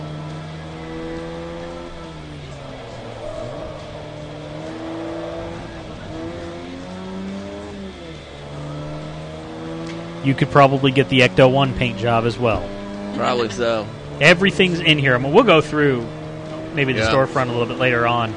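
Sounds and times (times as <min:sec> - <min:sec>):
heavy racing car engine revving on track: 0:00.0 - 0:18.3
speech: 0:10.2 - 0:16.2, 0:16.8 - 0:18.3.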